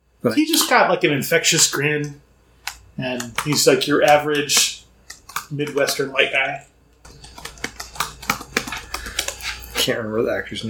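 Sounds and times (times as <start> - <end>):
speech: 0.2 - 2.3, 3.0 - 4.8, 5.5 - 6.7, 9.8 - 10.6
typing on a computer keyboard: 3.2 - 4.2, 7.1 - 9.5.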